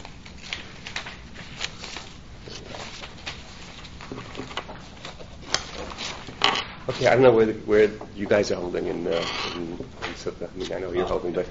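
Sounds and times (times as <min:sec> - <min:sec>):
pieces of paper rustling and crinkling: 0:00.0 - 0:07.2
speech: 0:06.9 - 0:11.4.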